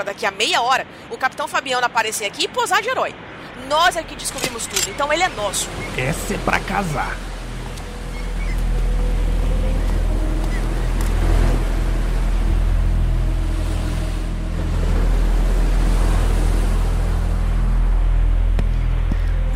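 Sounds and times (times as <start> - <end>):
speech: 0.0 - 7.3
ocean waves crashing against rocks: 3.2 - 18.6.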